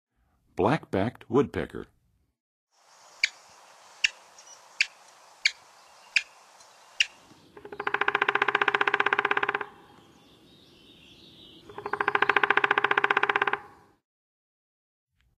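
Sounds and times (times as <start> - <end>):
Black-backed Woodpecker song in the Western USA: 3.0 - 14.0.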